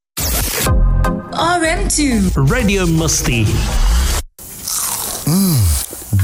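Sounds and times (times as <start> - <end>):
speech: 1.1 - 4.0, 5.3 - 6.2
crunchy bite into crispy plant-based food: 4.6 - 6.1
rising and falling vocal hum: 4.7 - 6.2.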